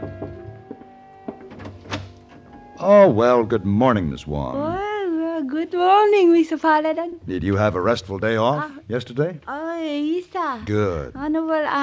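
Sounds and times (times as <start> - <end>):
knocks on a hotel room door: 0.0 - 1.9
steady low hum: 0.0 - 6.0
speech: 2.8 - 4.9, 5.5 - 11.8.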